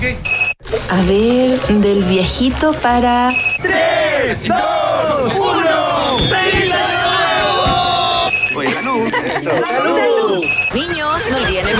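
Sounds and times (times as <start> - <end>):
speech: 0.0 - 7.0, 8.6 - 11.7
security alarm beep as it is activated: 0.2 - 0.6, 3.2 - 3.7, 7.9 - 11.7
laughter: 4.3 - 11.7.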